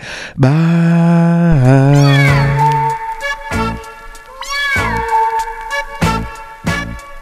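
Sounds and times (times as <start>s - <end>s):
speech: 0.4s - 1.2s
cat meow shouted in a dance song: 1.7s - 6.7s.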